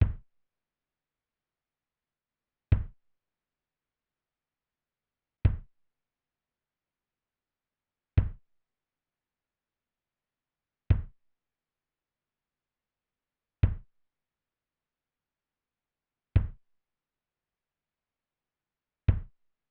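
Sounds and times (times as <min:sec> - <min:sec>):
kick drum: 0:00.0 - 0:00.3, 0:02.7 - 0:03.1, 0:05.4 - 0:05.8, 0:08.2 - 0:08.5, 0:10.9 - 0:11.2, 0:13.6 - 0:14.0, 0:16.4 - 0:16.7, 0:19.1 - 0:19.4.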